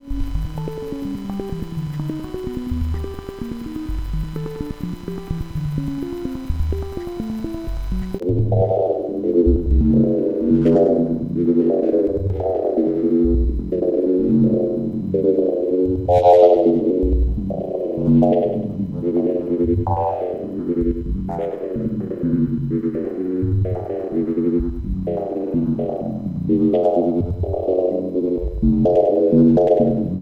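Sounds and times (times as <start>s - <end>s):
Polivoks synthesizer with resonant lowpass filter, LFO, FM and delay: 0.0s - 30.2s.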